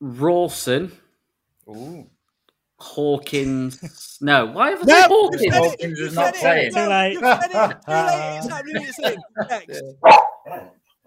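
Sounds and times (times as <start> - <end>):
speech: 0.0 - 1.0, 1.7 - 2.2, 2.8 - 10.8
laughter: 3.4 - 10.0
dog barking: 10.0 - 10.8.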